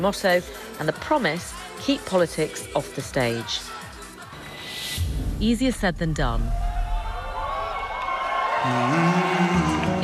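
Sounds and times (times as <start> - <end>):
speech: 0.0 - 3.8, 5.4 - 6.6, 8.6 - 10.0
crowd of thousands of music fans roaring and cheering: 6.4 - 10.0
whoops and shouts: 6.5 - 10.0.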